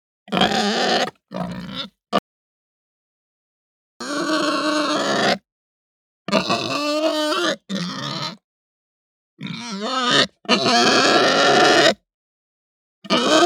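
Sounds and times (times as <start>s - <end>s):
Hampshire pig grunting and snorting angrily: 0.3s - 2.0s, 4.0s - 5.4s, 6.3s - 8.4s, 9.4s - 12.0s.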